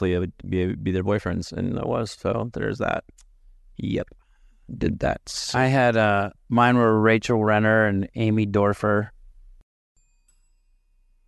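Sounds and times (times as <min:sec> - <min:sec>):
speech: 0:00.0 - 0:03.2, 0:03.8 - 0:09.2
small bell struck once: 0:10.0 - 0:11.2.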